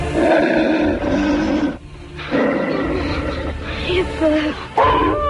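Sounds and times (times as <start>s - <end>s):
wolf letting out deep rumbling growls: 0.1s - 3.7s
speech: 4.2s - 5.2s.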